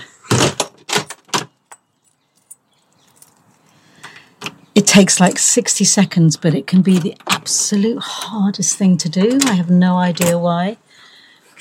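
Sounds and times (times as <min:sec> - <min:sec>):
keys jangling: 0:00.9 - 0:03.7
speech: 0:04.8 - 0:10.8.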